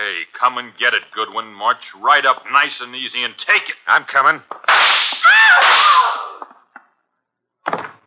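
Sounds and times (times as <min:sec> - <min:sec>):
speech: 0:00.4 - 0:06.2
gunshot with ricochet ring: 0:04.7 - 0:06.4
short rough burst: 0:04.7 - 0:06.4.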